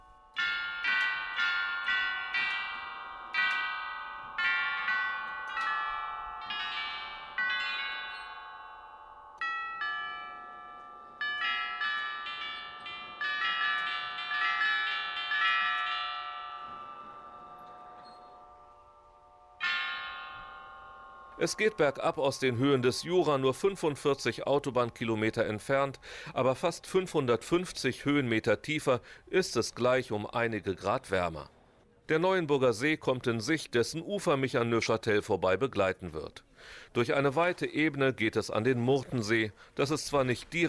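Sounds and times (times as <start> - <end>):
glockenspiel of tuned bells playing a melody in a museum courtyard: 0.0 - 26.6
speech: 21.4 - 40.6.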